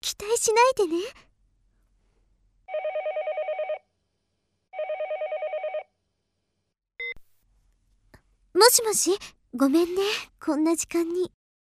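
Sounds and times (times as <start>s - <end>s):
speech: 0.1s - 1.3s, 8.6s - 11.4s
electronic telephone call ringing out: 2.7s - 3.9s, 4.7s - 5.9s.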